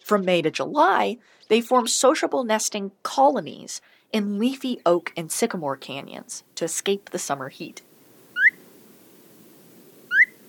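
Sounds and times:
speech: 0:00.1 - 0:07.9
Phainopepla calls of short rising whistled notes: 0:08.3 - 0:08.6, 0:10.1 - 0:10.4.

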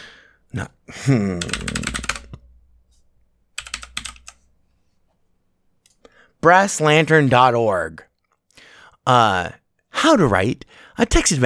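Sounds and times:
speech: 0:00.5 - 0:02.0, 0:06.4 - 0:08.1, 0:09.0 - 0:11.4
typing on a computer keyboard during an online search: 0:01.4 - 0:02.5, 0:03.6 - 0:04.4.

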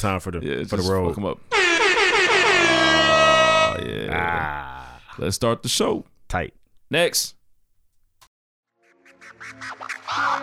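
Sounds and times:
speech: 0:00.0 - 0:01.6, 0:03.8 - 0:07.4, 0:09.4 - 0:10.4
loud blaring air horn blast: 0:01.5 - 0:03.9.

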